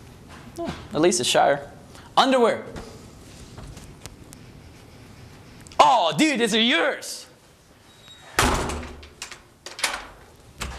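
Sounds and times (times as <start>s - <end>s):
speech: 0.6s - 2.9s, 5.9s - 7.2s
door slamming shut with a heavy thud: 8.3s - 10.7s.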